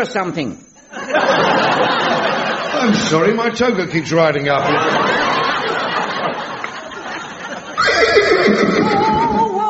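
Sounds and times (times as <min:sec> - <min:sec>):
speech: 0:00.0 - 0:02.1, 0:02.7 - 0:05.4
laughter: 0:00.8 - 0:03.3, 0:04.5 - 0:09.6
unicorn's horse-like neigh: 0:07.8 - 0:09.5.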